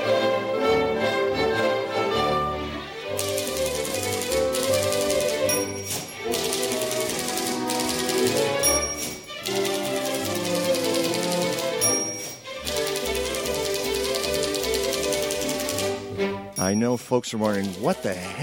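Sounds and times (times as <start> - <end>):
dense musical backing: 0.0 - 18.4
electric typewriter typing: 3.1 - 16.0, 16.6 - 18.4
typewriter bell-like dings: 3.3 - 13.6, 16.6 - 18.4
speech: 16.7 - 18.4.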